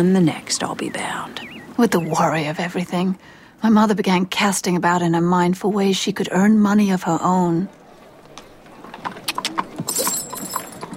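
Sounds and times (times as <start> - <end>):
speech: 0.0 - 7.8
horse hooves clip-clopping pulling a carriage: 7.2 - 10.9
horse-drawn carriage rolling along: 7.7 - 10.9
bright metallic jingle: 9.8 - 10.9.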